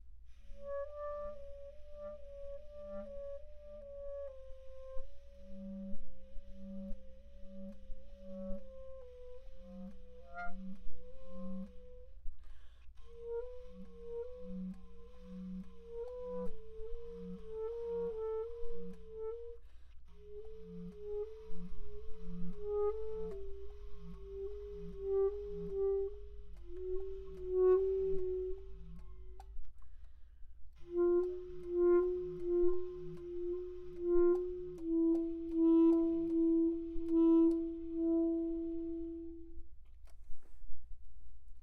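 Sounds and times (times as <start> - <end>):
slow trills in the second register of a bass instrument: 9.2 - 30.2, 30.8 - 39.6.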